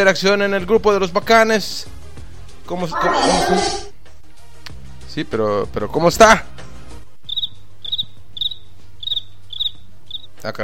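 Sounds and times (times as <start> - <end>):
speech: 0.0 - 1.9, 2.7 - 3.9, 5.2 - 6.6, 10.4 - 10.6
cricket chirping: 7.3 - 10.3.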